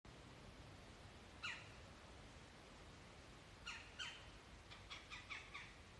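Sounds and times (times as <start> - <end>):
faint background hiss: 0.1 - 5.9
Red-bellied woodpecker Melanerpes carolinus rasping calls in Maryland: 1.4 - 1.8, 3.6 - 5.9.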